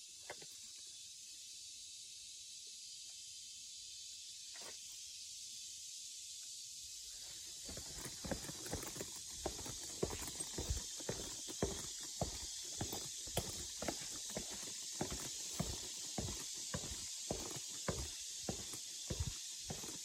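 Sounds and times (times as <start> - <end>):
footsteps walking along a trail: 7.6 - 20.0.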